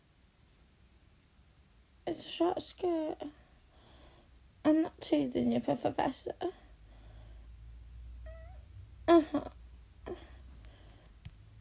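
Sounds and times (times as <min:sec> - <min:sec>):
speech: 0:02.1 - 0:03.4, 0:04.6 - 0:06.6, 0:09.1 - 0:10.2
cat meowing: 0:08.2 - 0:08.6.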